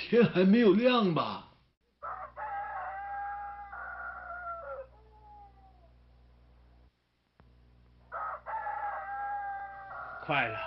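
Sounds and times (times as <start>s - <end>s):
speech: 0.1s - 1.5s, 10.3s - 10.6s
low hum: 1.3s - 10.6s
rooster crowing: 2.0s - 6.1s, 8.1s - 10.6s.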